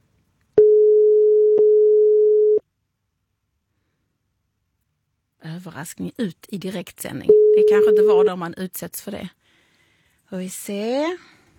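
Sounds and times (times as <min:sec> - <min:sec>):
telephone busy signal on a call: 0:00.6 - 0:02.6, 0:07.3 - 0:08.3
speech: 0:05.6 - 0:09.4, 0:10.3 - 0:11.4.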